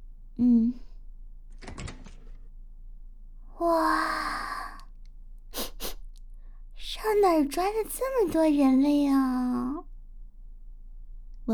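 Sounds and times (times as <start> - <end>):
speech: 0.4 - 0.8, 3.6 - 3.9, 7.3 - 9.6
short hummed vocal sound: 0.4 - 1.0
ranch door being opened with a rattling clatter: 1.5 - 2.5.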